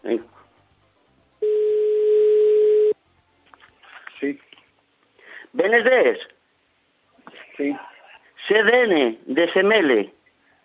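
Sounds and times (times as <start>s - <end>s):
telephone dial tone while placing a call: 1.4s - 3.0s
speech: 5.7s - 6.3s, 7.6s - 7.9s, 8.5s - 10.2s.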